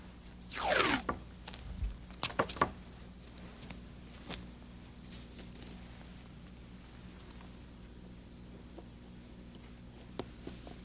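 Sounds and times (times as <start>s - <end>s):
adhesive tape pulled off a roll: 0.4s - 2.7s.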